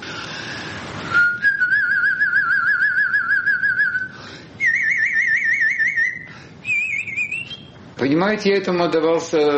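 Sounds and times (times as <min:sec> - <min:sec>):
person breathing: 0:00.0 - 0:01.0, 0:04.1 - 0:04.6, 0:06.2 - 0:06.6
person whistling a trill: 0:01.0 - 0:07.8
speech: 0:08.0 - 0:09.5.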